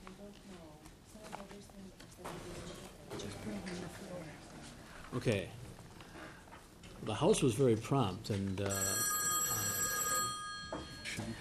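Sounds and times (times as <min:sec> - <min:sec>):
speech: 0:05.1 - 0:05.6, 0:07.0 - 0:09.1
telephone bell ringing: 0:08.7 - 0:11.3.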